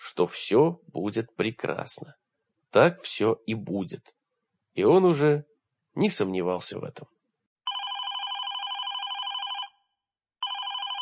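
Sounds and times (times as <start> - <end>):
speech: 0.2 - 4.2, 4.8 - 7.2
telephone ringing in trilling electronic bursts: 7.7 - 9.8, 10.4 - 11.0.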